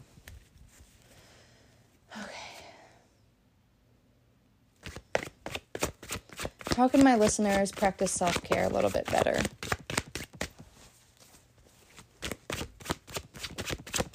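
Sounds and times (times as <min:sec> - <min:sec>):
deck of cards being shuffled with flicking taps and riffle: 0:04.8 - 0:14.1
speech: 0:06.8 - 0:09.7.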